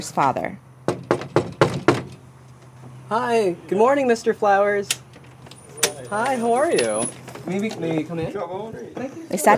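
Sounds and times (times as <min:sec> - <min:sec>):
speech: 0:00.0 - 0:00.7, 0:03.1 - 0:05.0, 0:06.0 - 0:09.5
firm knocking on a front door: 0:00.8 - 0:02.2.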